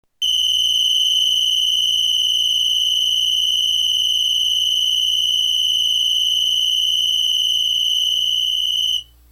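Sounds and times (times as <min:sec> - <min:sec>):
megaphone whistle: 0:00.2 - 0:09.1.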